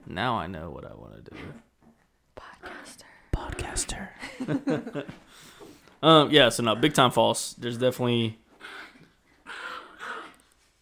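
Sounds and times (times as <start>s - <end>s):
speech: 0.1s - 1.7s, 2.4s - 8.9s
dog growling: 1.3s - 2.0s, 8.6s - 10.5s.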